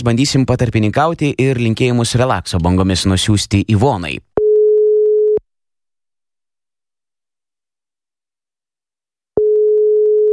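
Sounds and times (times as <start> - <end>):
speech: 0.0 - 4.3
telephone ringback tone while placing a call: 4.4 - 5.4, 9.4 - 10.3.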